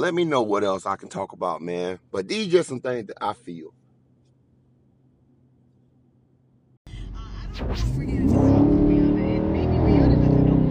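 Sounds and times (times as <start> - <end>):
speech: 0.0 - 3.8, 7.6 - 9.0
2020 Dodge Charger Scat Pack engine revving: 6.9 - 10.7.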